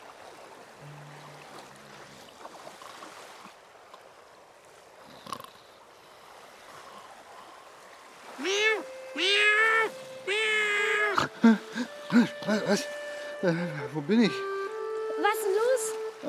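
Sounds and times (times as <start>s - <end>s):
faint rushing water: 0.0s - 16.2s
cat meowing: 8.4s - 11.3s
speech: 12.2s - 14.5s.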